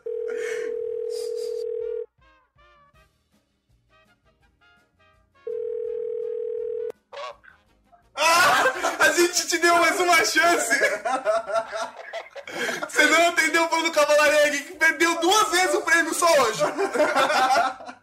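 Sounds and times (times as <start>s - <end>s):
telephone dial tone as a call is placed: 0.0s - 2.0s, 5.5s - 6.9s
laughter: 8.2s - 13.7s, 15.3s - 18.0s
speech: 9.4s - 17.8s.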